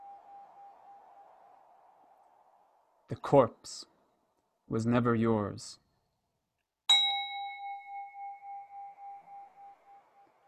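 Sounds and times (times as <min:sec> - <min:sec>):
speech: 0:03.1 - 0:03.9, 0:04.7 - 0:05.8
small bell struck: 0:06.9 - 0:09.8.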